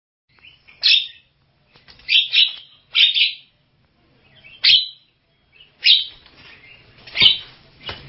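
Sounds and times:
Javan myna song of harsh squawky bursts: 0:00.3 - 0:01.3, 0:02.0 - 0:03.6, 0:04.2 - 0:08.0.

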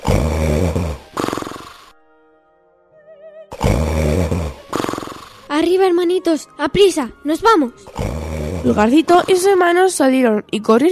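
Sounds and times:
loud rasping snores of an ogre: 0:00.0 - 0:01.9, 0:03.5 - 0:05.5, 0:07.8 - 0:09.6
soft tonal music: 0:00.1 - 0:10.8
speech: 0:05.6 - 0:10.8.

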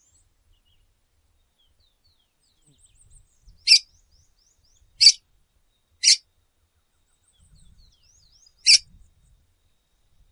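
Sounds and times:
female red-cowled cardinal giving sharp loud chips: 0:03.6 - 0:03.9, 0:05.0 - 0:05.2, 0:08.4 - 0:08.9.

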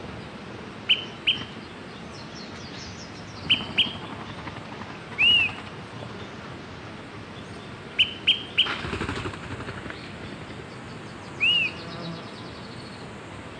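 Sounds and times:
background hiss: 0:00.0 - 0:13.5
Smoke-colored pewee Contopus fumigatus zarumae giving sharp pip notes: 0:00.9 - 0:01.6, 0:08.0 - 0:08.8, 0:11.4 - 0:12.2
Smoke-colored pewee arched slurred whistle: 0:05.2 - 0:05.6.

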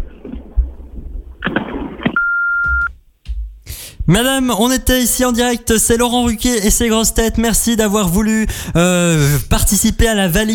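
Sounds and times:
answering machine beep: 0:02.2 - 0:02.9
speech: 0:04.1 - 0:10.5.

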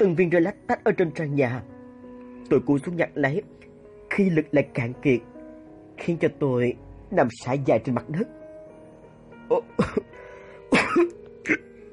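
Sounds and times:
speech: 0:00.0 - 0:01.8, 0:02.4 - 0:05.3, 0:06.0 - 0:08.4, 0:09.5 - 0:10.1, 0:10.9 - 0:11.7
dry coughing from a parched throat: 0:09.5 - 0:11.8.

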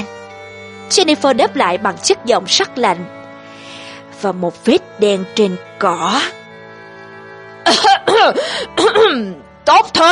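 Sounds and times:
speech: 0:00.9 - 0:03.2, 0:04.2 - 0:06.4, 0:07.7 - 0:10.1
person coughing: 0:07.7 - 0:09.3.

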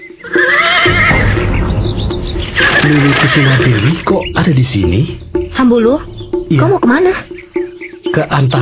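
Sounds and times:
horse neighing: 0:00.2 - 0:01.5, 0:02.5 - 0:04.0
speech: 0:02.9 - 0:07.3, 0:08.1 - 0:08.6.

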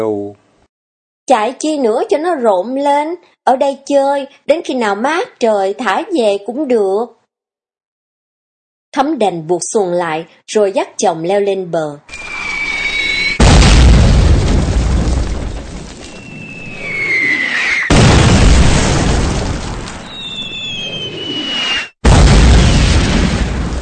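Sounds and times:
speech: 0:00.0 - 0:00.4, 0:01.3 - 0:07.2, 0:09.0 - 0:12.2
whistling tones falling in pitch: 0:12.1 - 0:13.4, 0:16.0 - 0:17.9, 0:20.0 - 0:22.0
heavy artillery fire pounding a village hamlet: 0:12.2 - 0:23.8.

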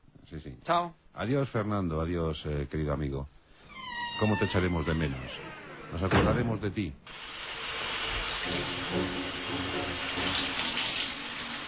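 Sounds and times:
speech: 0:00.3 - 0:03.4, 0:04.2 - 0:07.4, 0:08.4 - 0:10.5
shower running: 0:07.1 - 0:11.6.

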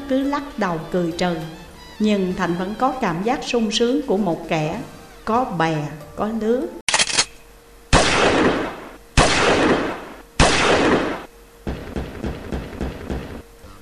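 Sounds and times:
speech: 0:00.1 - 0:06.8
gunfire bursts: 0:07.9 - 0:13.4
heavy gun firing: 0:07.9 - 0:13.4
rapid small pops: 0:09.2 - 0:13.4.

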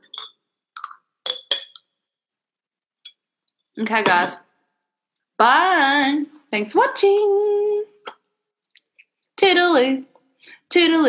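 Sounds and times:
glasses clinking in a toast: 0:00.0 - 0:00.4, 0:01.2 - 0:01.9
speech: 0:03.8 - 0:04.5, 0:05.4 - 0:07.7, 0:09.4 - 0:11.0.

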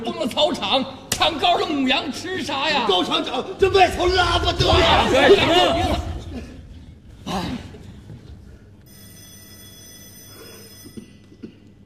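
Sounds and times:
speech: 0:00.0 - 0:06.1
telephone ringing with a bright metallic bell trill: 0:08.9 - 0:11.4.

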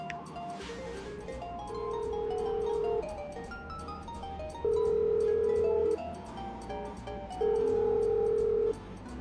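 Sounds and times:
ringback tone of an unanswered mobile phone call: 0:01.3 - 0:03.3, 0:04.0 - 0:06.2, 0:07.4 - 0:08.8.

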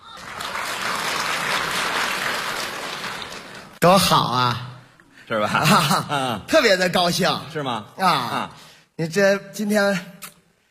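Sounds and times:
audience applause at a live comedy show: 0:00.0 - 0:03.8
speech: 0:03.8 - 0:04.6, 0:05.3 - 0:10.1.

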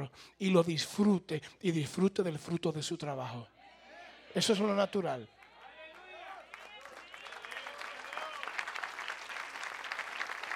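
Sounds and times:
speech: 0:00.0 - 0:03.6, 0:04.4 - 0:05.4
audience at a sermon applauding: 0:05.7 - 0:10.5.

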